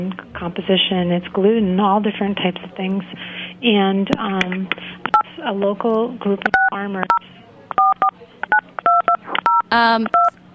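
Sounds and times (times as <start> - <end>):
speech: 0.0 - 7.3, 9.7 - 10.4
touch-tone telephone dialing beeps during a phone call: 6.5 - 10.3.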